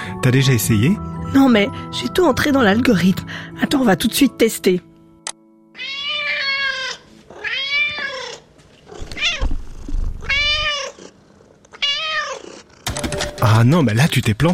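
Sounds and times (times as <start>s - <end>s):
speech: 0.2s - 4.9s, 13.5s - 14.5s
cat meowing: 5.8s - 11.1s, 11.7s - 12.7s
cat purring: 8.2s - 12.8s.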